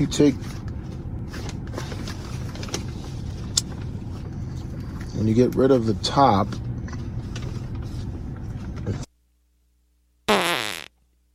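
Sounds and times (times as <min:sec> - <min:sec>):
speech: 0:00.0 - 0:00.6, 0:05.2 - 0:06.6
short high-pitched squeaky fart: 0:10.3 - 0:10.9.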